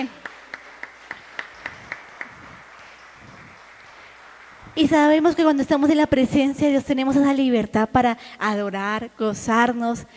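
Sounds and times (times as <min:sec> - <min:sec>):
speech: 0:00.0 - 0:00.2, 0:04.8 - 0:10.1
group clapping in a steady, even rhythm: 0:00.0 - 0:05.9.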